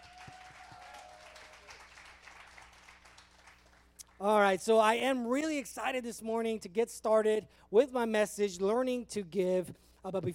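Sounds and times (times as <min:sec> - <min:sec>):
audience applauding: 0:00.0 - 0:04.2
speech: 0:04.2 - 0:10.3.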